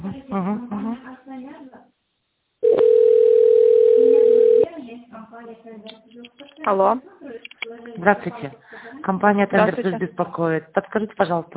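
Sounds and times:
steady single-pitch telephone tone while a call is being connected: 2.6 - 4.7
speech: 6.7 - 7.1, 8.0 - 11.5.

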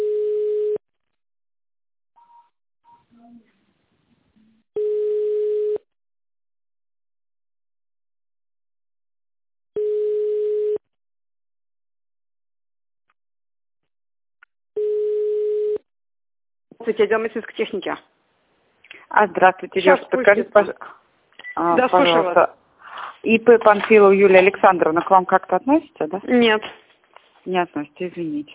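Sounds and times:
telephone ringback tone while a call is forwarded to an operator: 0.0 - 0.8, 4.8 - 5.8, 9.8 - 10.8, 14.8 - 15.8
speech: 16.8 - 18.2, 19.1 - 21.0, 21.6 - 22.6, 23.2 - 26.8, 27.4 - 28.5.

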